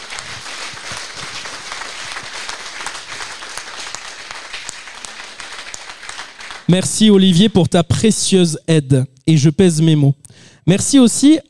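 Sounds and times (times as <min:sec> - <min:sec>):
crowd applauding: 0:00.0 - 0:07.3
speech: 0:06.7 - 0:11.4.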